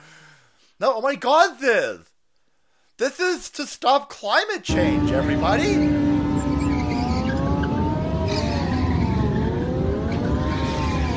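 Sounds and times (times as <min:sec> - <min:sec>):
speech: 0:00.8 - 0:02.1, 0:03.0 - 0:06.0
several motorcycle engines revving: 0:04.7 - 0:11.1.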